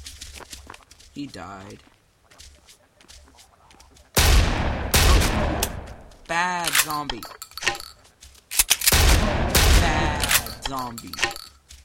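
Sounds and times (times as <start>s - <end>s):
speech: 1.2s - 1.9s, 6.4s - 7.4s, 10.7s - 11.4s
scatter-shot gunfire in a zombie video game: 4.2s - 5.9s, 8.9s - 10.6s.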